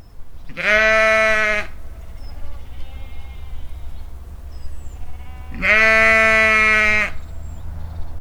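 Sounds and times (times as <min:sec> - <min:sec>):
sheep bleating: 0:00.5 - 0:07.3.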